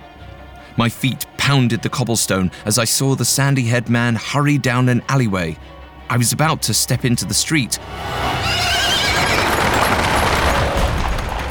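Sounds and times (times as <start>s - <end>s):
speech: 0.8s - 8.7s
horse whinnying: 8.1s - 10.4s
large horse-drawn carriage wheels rumbling on cobblestones: 8.6s - 11.4s
horse hooves clattering on a cobblestone street: 8.9s - 11.4s.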